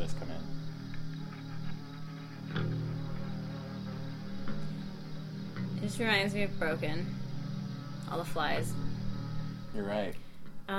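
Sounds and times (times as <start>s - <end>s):
crickets chirping: 0.0s - 10.7s
speech: 5.9s - 7.2s, 8.1s - 8.8s, 9.7s - 10.7s.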